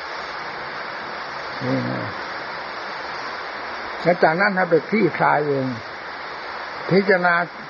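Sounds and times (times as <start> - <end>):
rain falling: 0.0 - 7.6
person murmuring: 1.6 - 2.2
speech: 1.6 - 2.2, 4.0 - 5.9, 6.9 - 7.6.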